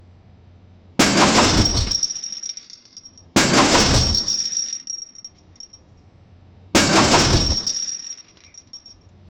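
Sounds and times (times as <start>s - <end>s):
heavy metallic clatter on a ship: 1.0s - 4.9s, 6.8s - 8.9s.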